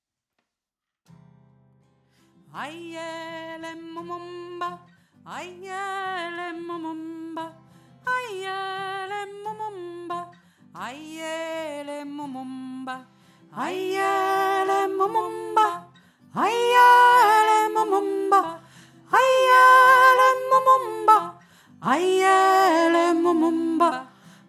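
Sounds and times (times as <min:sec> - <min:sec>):
high voice singing African interlude in three parts: 0:13.6 - 0:24.1.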